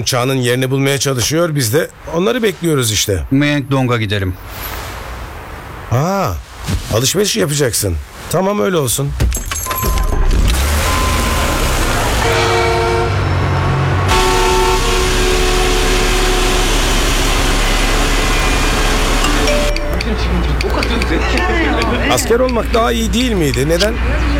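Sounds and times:
speech: 0.0 - 4.9, 5.9 - 10.0, 22.1 - 24.3
busy road traffic engine rumble: 10.4 - 24.3
car horns honking: 10.6 - 24.0.

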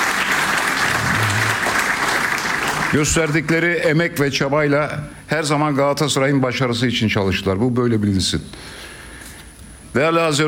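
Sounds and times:
audience applauding in a hall: 0.0 - 3.6
speech: 2.9 - 8.8, 10.0 - 10.4.

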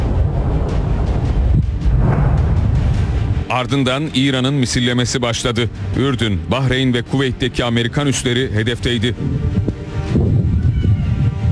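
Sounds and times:
wind buffeting the microphone: 0.0 - 3.5, 9.1 - 11.4
loud deep explosions in Tabriz, Bushehr and Isfahan, Iran: 0.0 - 5.2
speech: 3.5 - 9.7.

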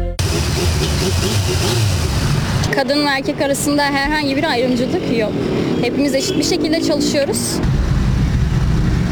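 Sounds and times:
loud car engine revving: 0.2 - 2.9, 5.3 - 9.1
busy street traffic in Istanbul: 0.2 - 9.1
speech: 2.8 - 7.8.

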